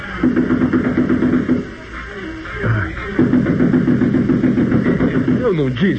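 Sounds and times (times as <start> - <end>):
rapid knocking on a door: 0.2 - 1.7, 3.2 - 5.5
speech: 0.2 - 1.8, 5.6 - 5.9.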